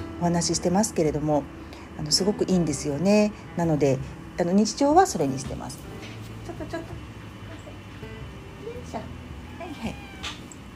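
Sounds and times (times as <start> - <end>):
low steady hum: 0.0 - 10.7
speech: 0.2 - 6.8
cat meowing: 9.3 - 10.6.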